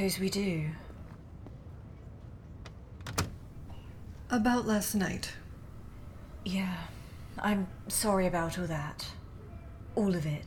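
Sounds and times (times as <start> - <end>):
speech: 0.0 - 0.9, 4.3 - 5.4, 6.4 - 9.2, 10.0 - 10.4
door shutting with a solid thud and brief rattle: 3.0 - 3.9.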